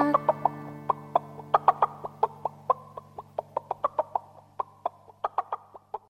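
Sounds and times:
steady low hum: 0:00.0 - 0:04.6
chicken clucking: 0:00.0 - 0:06.1.

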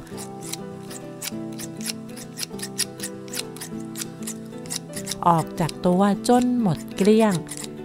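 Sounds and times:
large shears cutting sheep's wool: 0:00.0 - 0:07.8
soft sustained musical background: 0:00.0 - 0:07.8
speech: 0:05.2 - 0:07.6.

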